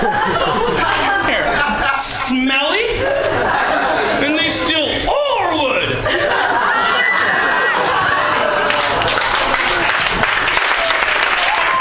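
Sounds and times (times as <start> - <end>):
laughter: 0.0 - 11.2
crowd applauding: 6.9 - 11.7
faint crowd voices and cheers: 8.1 - 11.7.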